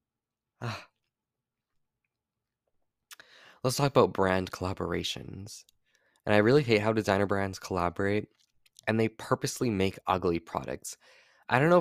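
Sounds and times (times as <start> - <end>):
short breathy yawn: 0.6 - 0.9
speech: 0.6 - 0.9, 3.6 - 5.7, 6.3 - 11.7.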